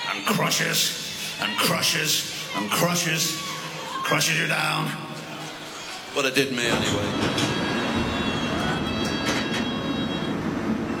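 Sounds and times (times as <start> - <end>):
speech: 0.1 - 5.0, 6.2 - 7.7
Hammersmith and City line London Underground train rumbling at Edgware Road station: 5.2 - 10.9.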